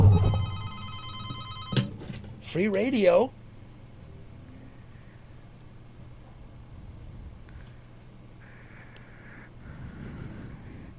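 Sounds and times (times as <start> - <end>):
burst of noise: 0.0 - 0.8
telephone ringing: 0.0 - 2.0
speech: 2.5 - 3.4.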